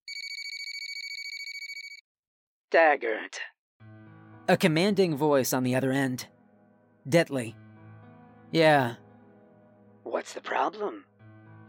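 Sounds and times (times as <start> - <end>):
telephone ringing with electronic trilling: 0.1 - 2.0
speech: 2.7 - 3.6, 4.5 - 6.4, 7.0 - 7.6, 8.5 - 9.0, 10.1 - 11.1.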